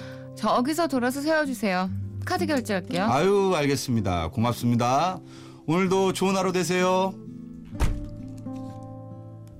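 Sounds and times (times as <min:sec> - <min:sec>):
speech: 0:00.4 - 0:07.2
car door slamming shut: 0:07.7 - 0:08.2.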